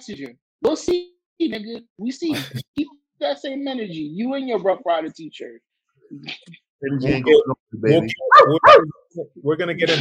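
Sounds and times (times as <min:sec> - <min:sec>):
speech: 0:00.0 - 0:10.0
man imitating dog barks and growls: 0:08.0 - 0:09.0.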